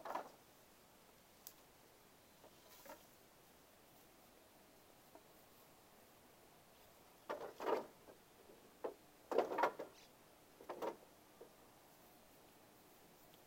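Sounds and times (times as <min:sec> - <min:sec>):
faint hiss: 0:00.0 - 0:13.4
dry wooden knocks of rice-drying poles being stored under a roof: 0:07.2 - 0:08.0, 0:08.8 - 0:10.0, 0:10.6 - 0:11.5.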